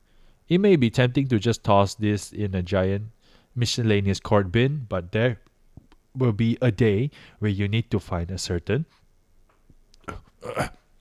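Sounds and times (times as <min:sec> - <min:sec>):
speech: 0:00.5 - 0:05.5, 0:06.2 - 0:09.0, 0:10.1 - 0:10.8
guttural burp: 0:10.0 - 0:10.9.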